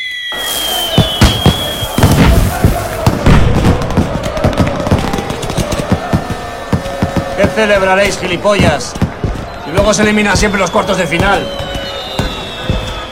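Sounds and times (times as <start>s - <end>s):
fireworks whistling: 0.0s - 3.8s, 9.4s - 13.1s
fireworks crackling: 0.1s - 7.4s, 8.8s - 13.1s
fireworks booming: 0.3s - 13.1s
speech: 7.6s - 9.0s, 9.7s - 11.7s.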